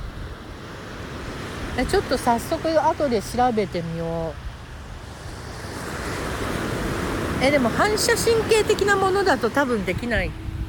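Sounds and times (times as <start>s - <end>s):
ocean waves breaking on shore: 0.0s - 10.6s
speech: 1.8s - 4.4s, 7.4s - 10.4s.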